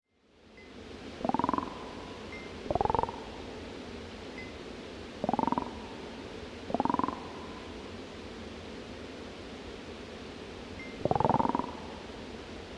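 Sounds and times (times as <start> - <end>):
steady background hiss: 0.1 - 12.7
toad calling: 1.2 - 3.4, 5.2 - 5.9, 6.7 - 7.7, 10.9 - 11.9.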